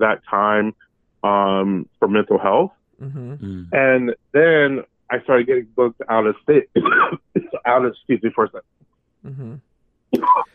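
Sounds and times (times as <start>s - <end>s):
speech: 0.0s - 10.5s
woman clearing throat: 3.0s - 3.7s
woman coughing: 6.8s - 7.2s.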